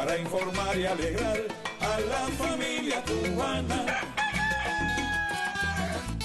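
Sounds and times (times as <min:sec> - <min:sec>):
speech: 0:00.2 - 0:04.1
rooster crowing: 0:03.7 - 0:06.1.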